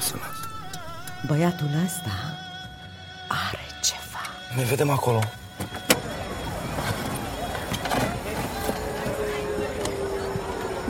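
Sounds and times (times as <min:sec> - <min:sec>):
speech: 0:01.2 - 0:02.4, 0:04.5 - 0:05.4
continuous road noise: 0:04.7 - 0:10.8
steady droning engine rumble inside a car: 0:05.5 - 0:10.8.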